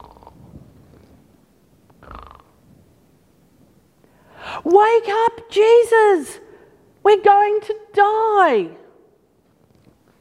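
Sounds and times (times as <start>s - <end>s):
voice imitating snoring: 0.0s - 0.4s, 2.0s - 2.6s
speech: 4.6s - 6.4s, 7.0s - 8.8s.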